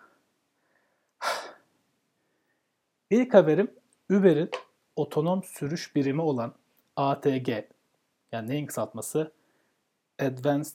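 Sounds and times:
heavy out-of-breath breathing: 0.0 - 2.6
speech: 3.1 - 9.4, 10.2 - 10.7.

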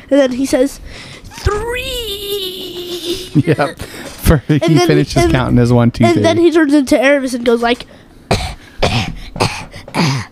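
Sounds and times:
speech: 0.1 - 8.0
person imitating a dry cough: 8.3 - 10.3.

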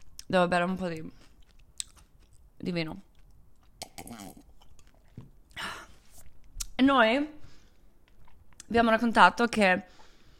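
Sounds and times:
speech: 0.3 - 1.3, 2.6 - 3.1, 6.8 - 7.4, 8.7 - 10.0
person eating potato chips: 1.0 - 6.7.

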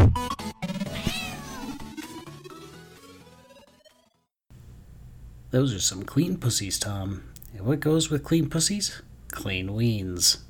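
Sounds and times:
cat meowing while being given a bath: 0.8 - 1.9
speech: 5.5 - 10.4.

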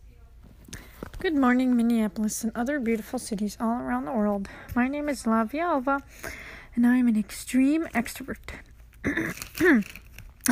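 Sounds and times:
speech: 1.2 - 10.5
throat clearing: 9.0 - 10.5.

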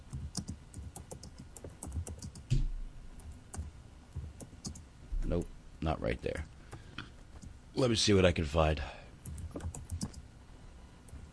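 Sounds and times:
typing on a computer keyboard entering a web search: 0.1 - 2.5, 9.2 - 10.2
speech: 5.3 - 6.6, 7.8 - 9.0.

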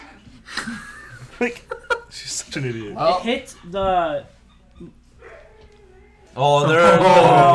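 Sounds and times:
low hum: 0.0 - 7.5
laughter: 0.5 - 2.3
speech: 0.7 - 5.0, 6.4 - 7.5
dog whimpering: 3.6 - 6.3
dog barking: 5.2 - 5.7.

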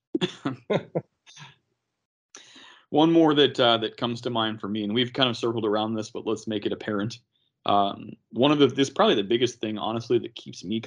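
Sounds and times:
person coughing: 0.2 - 1.0
speech: 0.2 - 1.1, 2.9 - 10.8.

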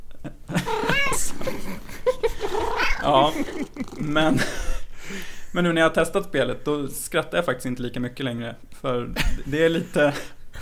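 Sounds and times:
laughter: 0.5 - 5.2, 9.2 - 10.6
cat letting out a drawn-out whiny meow: 0.7 - 1.4, 2.5 - 3.3
speech: 3.1 - 10.4.

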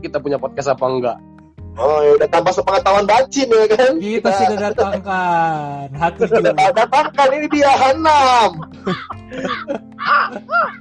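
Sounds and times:
speech: 0.0 - 10.7
laughter: 6.1 - 10.7
crow cawing: 8.9 - 10.7.

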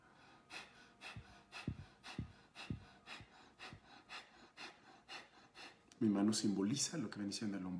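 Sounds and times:
rapid forceful breathing through the nose: 0.0 - 6.0
speech: 6.0 - 7.7.

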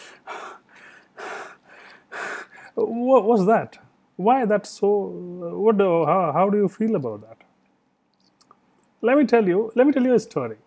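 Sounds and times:
person imitating heavy panting after climbing stairs: 0.0 - 2.8
speech: 2.8 - 7.4, 9.0 - 10.6.

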